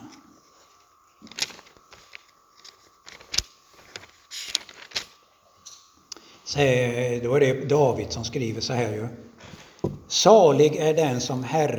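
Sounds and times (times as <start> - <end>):
faint steady hum: 0.0 - 11.7
pages of a Bible flipping: 0.5 - 5.8
speech: 6.5 - 9.3, 10.1 - 11.7.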